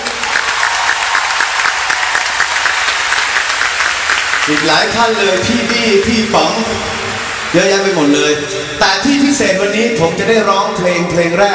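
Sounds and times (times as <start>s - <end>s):
audience applauding: 0.0s - 10.3s
speech: 4.5s - 11.5s.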